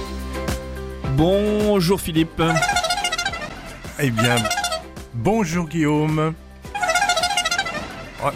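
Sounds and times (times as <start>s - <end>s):
speech: 1.2s - 2.8s, 4.0s - 4.6s, 5.2s - 6.4s, 8.2s - 8.3s
Tour de France caravan car horn honking a melodic tune: 2.4s - 5.6s, 6.7s - 8.3s.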